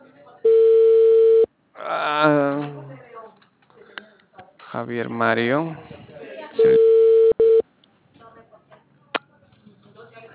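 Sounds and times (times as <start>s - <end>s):
telephone line tone as a call is placed: 0.5s - 1.5s, 6.6s - 7.6s
speech: 4.8s - 5.9s.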